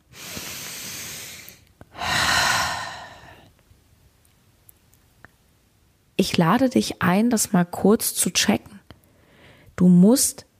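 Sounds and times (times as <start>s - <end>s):
deep breathing: 0.1s - 3.5s
speech: 6.2s - 8.7s, 9.8s - 10.5s.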